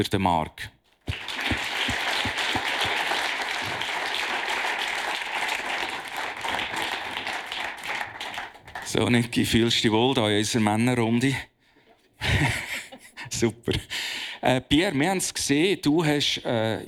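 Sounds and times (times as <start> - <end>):
speech: 0.0 - 0.8, 8.9 - 11.5, 12.3 - 12.6, 13.4 - 16.8
laughter: 1.1 - 9.0, 12.2 - 14.6
crowd applauding: 1.1 - 9.1.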